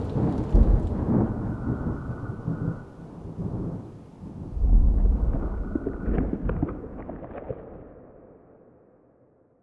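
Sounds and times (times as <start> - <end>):
thunderclap: 0.0 - 8.2.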